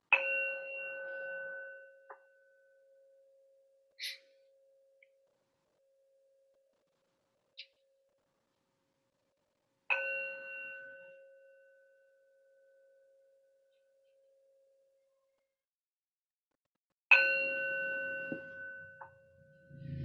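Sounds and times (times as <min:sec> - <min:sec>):
meditation bell ringing: 0:00.1 - 0:03.5, 0:09.9 - 0:13.3, 0:17.1 - 0:19.9.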